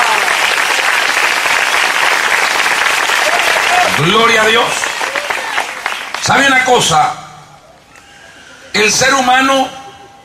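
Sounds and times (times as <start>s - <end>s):
church audience applauding loudly: 0.0s - 6.8s
speech: 4.0s - 4.8s, 6.3s - 7.2s, 8.7s - 9.8s.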